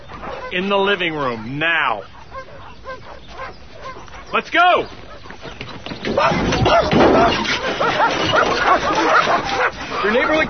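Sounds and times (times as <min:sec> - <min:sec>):
several dogs barking frantically at a window in a living room: 0:00.0 - 0:10.4
speech: 0:00.5 - 0:02.2, 0:04.3 - 0:05.0, 0:05.9 - 0:10.4.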